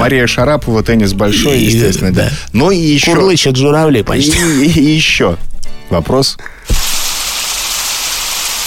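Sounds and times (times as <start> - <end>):
speech: 0.0 - 6.6
bacon frying in a pan: 6.7 - 8.6.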